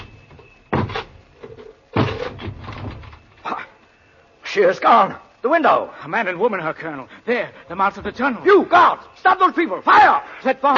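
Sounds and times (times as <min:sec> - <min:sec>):
wooden door being battered in: 0:00.7 - 0:01.2, 0:01.9 - 0:03.2
wood splintering and rattling: 0:00.7 - 0:03.3
speech: 0:04.5 - 0:10.7.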